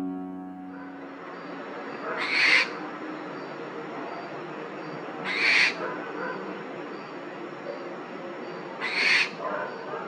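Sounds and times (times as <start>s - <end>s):
barn owl giving harsh raspy screeches: 2.1s - 2.9s, 5.3s - 5.8s, 8.8s - 9.4s.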